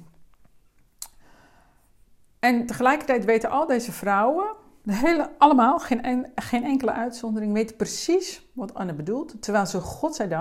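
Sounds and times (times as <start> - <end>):
lip click while sipping a drink: 1.0 - 1.2
speech: 2.4 - 10.4.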